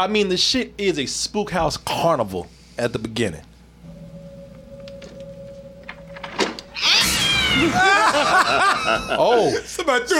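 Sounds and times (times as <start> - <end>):
speech: 0.0 - 3.5, 7.6 - 10.1
cat screech in a movie jump scare: 6.7 - 8.0
laughter: 7.5 - 9.9.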